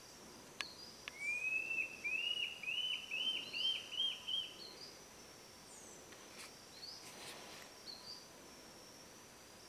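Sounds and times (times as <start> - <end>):
Batara copeton calling: 0.6 - 5.0.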